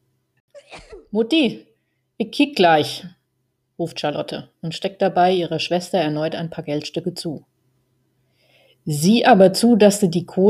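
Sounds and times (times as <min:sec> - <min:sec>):
sick weakened woman coughing in a small room next door: 0:00.6 - 0:01.2
speech: 0:01.1 - 0:03.2, 0:03.8 - 0:07.5, 0:08.8 - 0:10.4.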